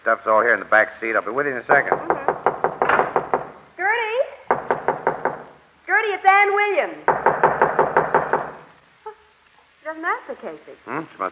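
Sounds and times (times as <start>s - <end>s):
speech: 0.0s - 2.3s, 6.2s - 7.3s, 9.9s - 11.3s
knocking on a door: 1.7s - 3.7s, 4.5s - 5.6s, 7.0s - 8.7s.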